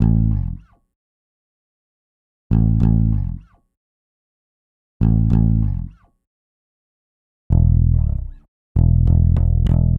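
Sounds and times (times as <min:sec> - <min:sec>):
hip hop exotica bass in A minor: 0:00.0 - 0:00.7, 0:02.5 - 0:03.4, 0:05.0 - 0:06.0, 0:07.5 - 0:09.9.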